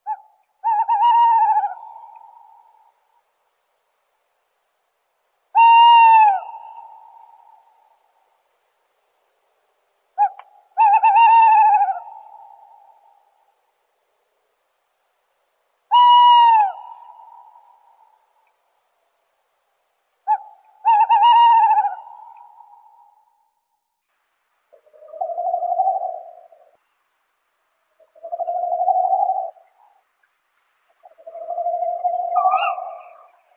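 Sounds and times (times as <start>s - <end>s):
tawny owl calls: 0.0s - 2.9s, 5.5s - 7.8s, 10.2s - 13.3s, 15.9s - 18.2s, 20.2s - 23.3s, 24.7s - 26.8s, 28.0s - 30.0s, 30.9s - 33.5s.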